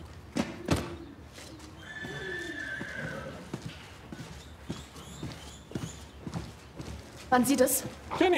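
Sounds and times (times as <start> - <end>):
hooves clopping on a hard surface: 1.3 - 8.3
horse whinnying: 1.8 - 3.6
speech: 7.3 - 8.3.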